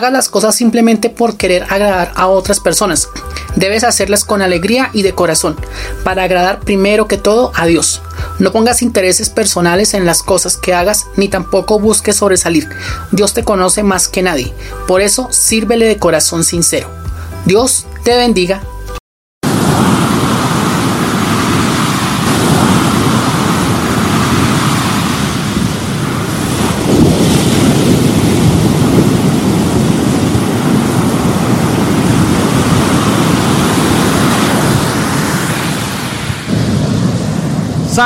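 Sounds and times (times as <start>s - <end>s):
speech: 0.0s - 18.7s
Pacific Ocean surf breaking on a beach: 19.4s - 38.0s.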